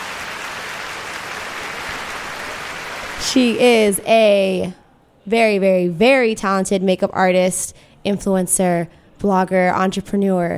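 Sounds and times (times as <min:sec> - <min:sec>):
studio audience applause welcoming a guest: 0:00.0 - 0:04.0
speech: 0:03.2 - 0:10.5.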